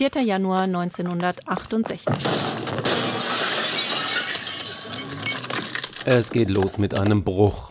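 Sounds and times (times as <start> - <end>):
speech: 0.0 - 3.3, 6.0 - 7.6
glass door being smashed in: 2.1 - 6.5
glass shards tinkling and scattering: 3.2 - 6.1.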